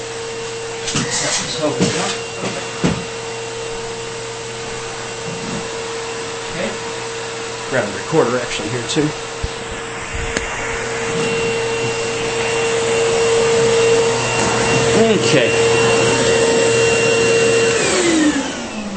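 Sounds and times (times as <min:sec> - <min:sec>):
central vacuum motor running: 0:00.0 - 0:18.9
speech: 0:01.0 - 0:02.0, 0:07.7 - 0:09.3, 0:15.1 - 0:15.6.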